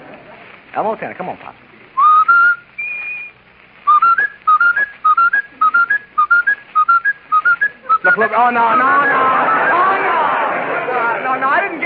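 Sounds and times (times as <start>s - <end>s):
speech: 0.7s - 1.8s, 8.1s - 9.7s
person whistling a repeating two-note figure: 2.0s - 10.0s
laughter: 7.5s - 11.8s.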